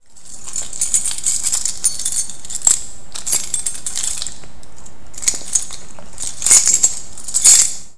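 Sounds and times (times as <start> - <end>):
keys jingling: 0.0 - 7.9.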